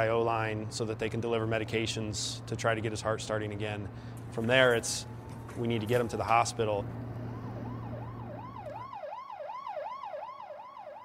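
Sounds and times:
speech: 0.0 - 7.0
low engine drone: 0.0 - 9.0
arriving ambulance siren wailing: 4.5 - 11.0.

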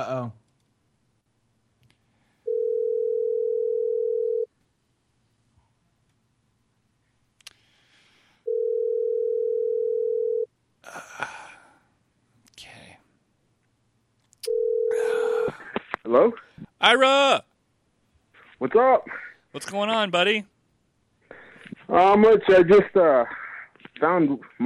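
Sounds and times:
telephone dial tone while placing a call: 2.5 - 4.5, 8.5 - 10.5, 14.5 - 15.4
speech: 16.1 - 17.5, 18.6 - 20.5, 21.9 - 23.4, 24.0 - 24.6.

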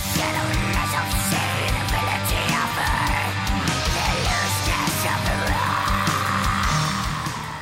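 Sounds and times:
dense loud metal instrumentation: 0.0 - 7.5
raspy mid-range snarled goblin-like black metal vocals: 0.0 - 7.5.

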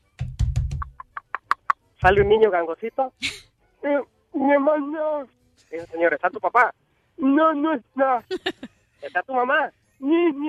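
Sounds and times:
heavy thumps and sharp raps knocking on a door: 0.2 - 1.0, 2.0 - 2.4
speech: 2.0 - 10.4
laughter: 8.3 - 8.7.

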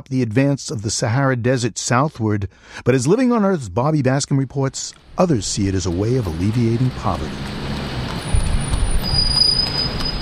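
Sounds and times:
speech: 0.0 - 7.8
low traffic rumble on a main street of Dakar Senegal: 4.1 - 10.1
high squealing of wooden horse cart wheels: 5.8 - 10.1.

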